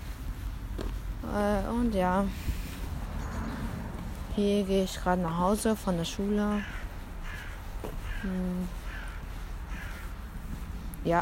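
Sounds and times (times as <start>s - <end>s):
steady low outdoor rumble: 0.0s - 11.1s
speech: 1.3s - 2.5s, 4.4s - 6.8s, 7.8s - 8.8s
raven cawing: 6.5s - 10.6s.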